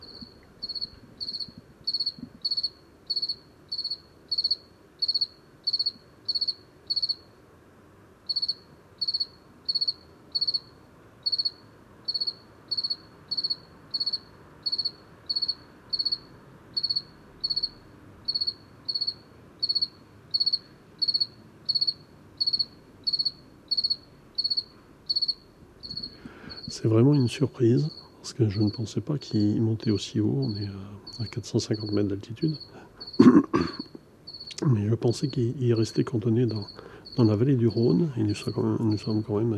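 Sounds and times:
two-spotted field cricket chirping: 0:00.0 - 0:07.3, 0:08.2 - 0:39.5
faint hum: 0:00.0 - 0:39.5
speech: 0:26.8 - 0:33.8, 0:34.6 - 0:39.5.

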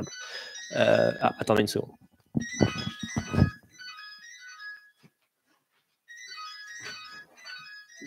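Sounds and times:
mobile phone ringtone playing a bright melodic electronic tune: 0:00.0 - 0:01.8, 0:02.4 - 0:05.2, 0:06.1 - 0:08.0
speech: 0:00.0 - 0:02.6
handling noise: 0:02.3 - 0:03.6
low thumps: 0:02.3 - 0:03.6.

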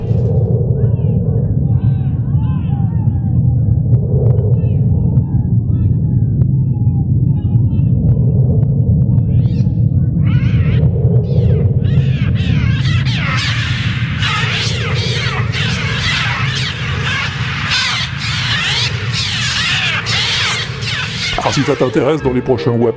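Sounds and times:
deep steady rumble: 0:00.0 - 0:21.6
synthesized rapid fluttering wing beats: 0:00.0 - 0:22.9
synthesized electronic bird shrieks and cries on a trautonium: 0:09.4 - 0:22.9
speech: 0:21.6 - 0:22.9.

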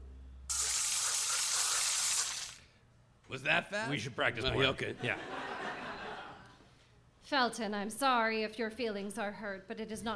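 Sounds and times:
soda gun nozzle spraying in a hissing burst: 0:00.5 - 0:02.7
speech: 0:03.3 - 0:05.4, 0:07.3 - 0:10.1
laughter: 0:04.9 - 0:06.6.

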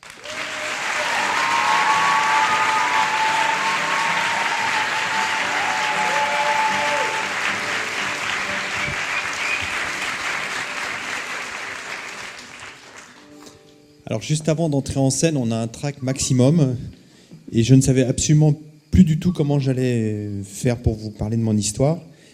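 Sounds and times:
audience whistles and cheers: 0:00.0 - 0:12.2
large audience applauding: 0:00.0 - 0:13.4
speech: 0:14.1 - 0:22.1.

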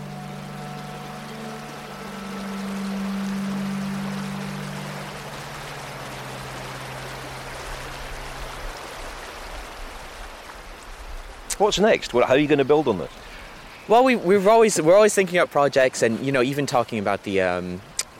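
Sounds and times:
low droning hum: 0:00.0 - 0:08.4
flowing river water: 0:00.0 - 0:18.1
speech: 0:11.6 - 0:13.2, 0:13.9 - 0:17.9.

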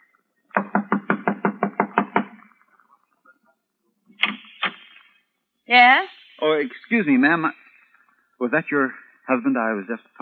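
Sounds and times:
firm knocking on a wooden door: 0:00.6 - 0:02.4
speech: 0:05.7 - 0:07.6, 0:08.4 - 0:10.2.

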